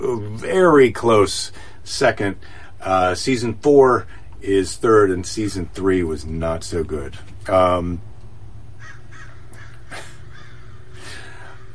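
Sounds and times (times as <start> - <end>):
speech: 0.0 - 8.1
steady low rumble: 0.0 - 11.7
crows cawing: 8.8 - 11.7.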